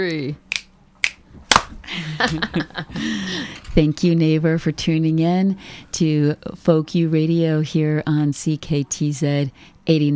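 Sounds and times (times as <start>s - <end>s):
speech: 0.0s - 0.5s, 1.9s - 10.1s
finger snaps: 0.5s - 1.7s
hands clapping: 0.5s - 1.7s
laughter: 1.8s - 3.5s.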